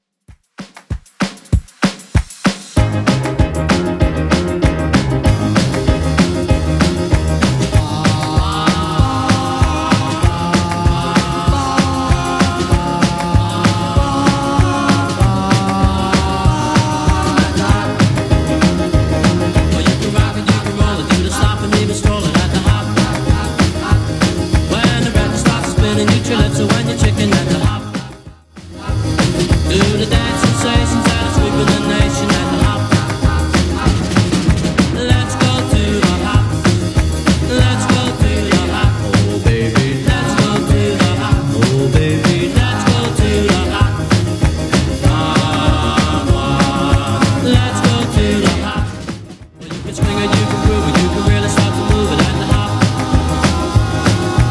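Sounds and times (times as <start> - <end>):
music at 193 bpm: 0.2 - 54.4.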